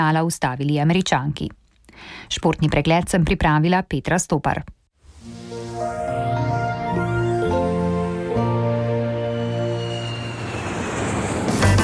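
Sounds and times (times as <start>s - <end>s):
speech: 0.0s - 4.8s
airplane engine droning overhead: 5.1s - 11.8s.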